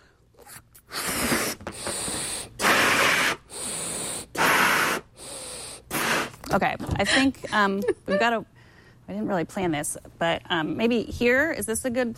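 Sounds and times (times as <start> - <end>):
person blowing up a rubber balloon: 0.3 - 6.5
speech: 6.5 - 12.1.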